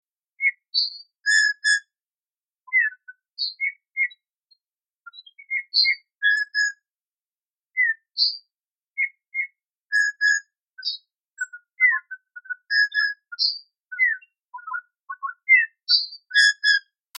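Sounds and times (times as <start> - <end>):
male bullfinch singing: 2.7 - 6.8, 7.8 - 17.1.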